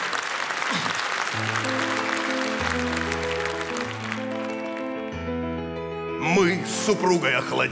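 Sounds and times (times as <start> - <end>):
audience applause: 0.0 - 5.2
chord-based musical accompaniment: 1.4 - 7.7
speech: 6.9 - 7.7.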